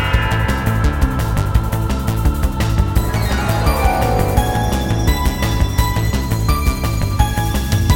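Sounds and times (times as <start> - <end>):
freespin melody: 0.1 - 7.8.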